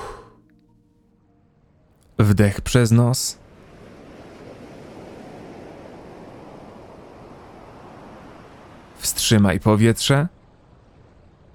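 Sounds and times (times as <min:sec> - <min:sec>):
speech: 0:02.2 - 0:03.4, 0:09.3 - 0:10.4
ocean waves washing on shore: 0:02.6 - 0:11.5.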